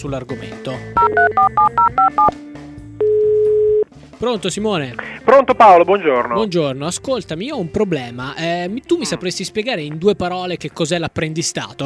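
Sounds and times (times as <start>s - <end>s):
speech: 0.0s - 2.6s, 4.2s - 11.8s
touch-tone telephone number being dialed: 1.0s - 2.3s, 3.0s - 3.8s.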